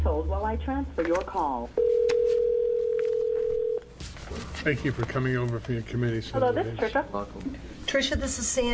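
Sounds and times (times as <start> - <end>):
speech: 0.2 - 1.9, 4.6 - 8.7
telephone keypad tones dialing an extension: 1.8 - 3.8.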